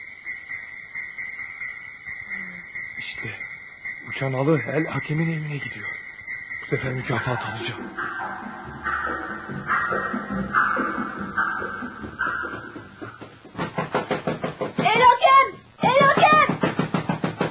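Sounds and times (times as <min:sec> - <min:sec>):
soft tonal sound: 0:00.0 - 0:13.4
speech: 0:04.2 - 0:06.0, 0:06.7 - 0:12.2
rapid insistent knocking on a door: 0:13.2 - 0:15.0, 0:15.8 - 0:17.4.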